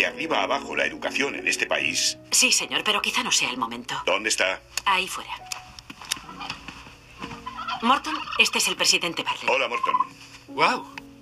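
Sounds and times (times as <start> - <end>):
speech: 0.0 - 5.6, 7.8 - 11.0
turkey gobbling: 6.2 - 6.7, 7.3 - 10.1.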